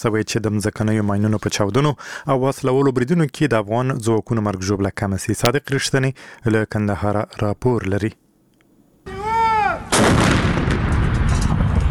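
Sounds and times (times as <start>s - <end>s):
speech: 0.0s - 8.2s
artillery shell whistling: 9.1s - 11.8s.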